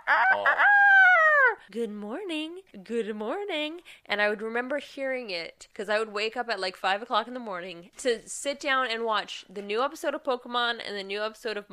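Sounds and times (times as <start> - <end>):
human voice imitating the crowing alarm of a chicken-shaped clock: 0.0 - 1.6
speech: 0.1 - 0.8, 1.6 - 11.7.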